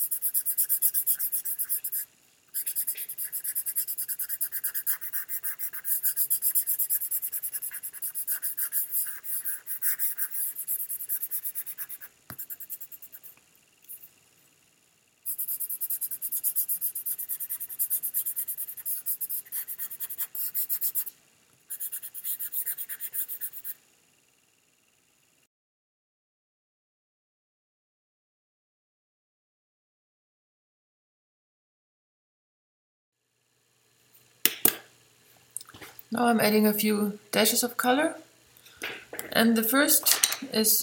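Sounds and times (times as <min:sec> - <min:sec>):
pencil shading across paper in quick back-and-forth strokes: 0:00.0 - 0:13.4, 0:15.3 - 0:21.1, 0:21.7 - 0:23.8
speech: 0:36.1 - 0:38.2, 0:39.4 - 0:40.8.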